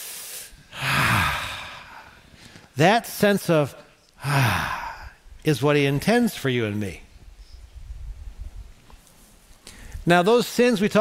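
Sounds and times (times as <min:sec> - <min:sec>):
group of people at a church service taking a deep breath: 0:00.0 - 0:02.7, 0:09.6 - 0:10.0
speech: 0:02.8 - 0:04.8, 0:05.4 - 0:07.0, 0:10.1 - 0:10.9.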